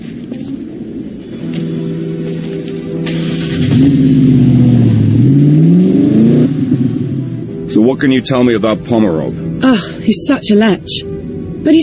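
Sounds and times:
car engine starting, revving and accelerating through gears: 3.1 - 7.9
speech: 7.9 - 11.8.

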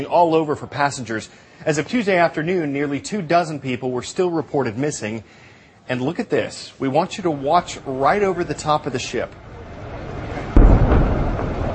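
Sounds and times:
speech: 0.0 - 9.4
explosion from a charge set off by rescue workers on a wrecked ship: 10.4 - 11.7.

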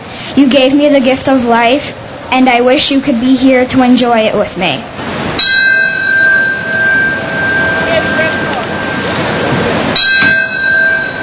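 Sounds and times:
speech: 0.4 - 5.2
large memorial bell tolling: 5.4 - 11.2.

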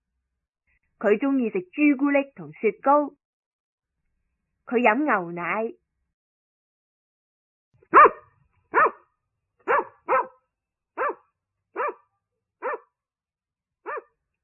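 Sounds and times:
speech: 1.0 - 3.2, 4.7 - 5.8
dog barking: 7.9 - 10.4, 11.0 - 12.9, 13.8 - 14.2.

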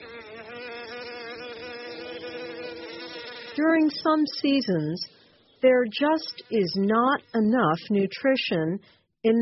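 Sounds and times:
bees buzzing while flying in search of food: 0.0 - 7.8
speech: 3.6 - 9.4.

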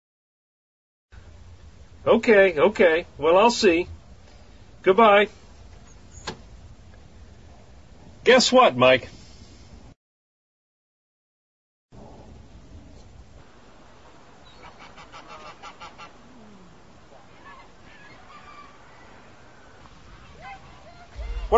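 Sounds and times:
steady outdoor noise: 1.1 - 10.0, 11.9 - 21.5
speech: 2.0 - 4.0, 4.8 - 5.4, 8.2 - 9.2
geese honking: 14.4 - 21.5.

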